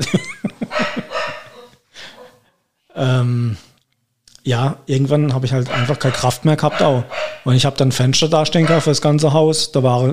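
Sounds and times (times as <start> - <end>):
laughter: 0.0 - 1.4
dog yelping: 0.7 - 2.4, 5.7 - 7.5, 8.6 - 9.0
dog barking: 0.7 - 2.5, 5.6 - 7.6, 8.5 - 9.1
speech: 3.0 - 3.7, 4.4 - 10.1.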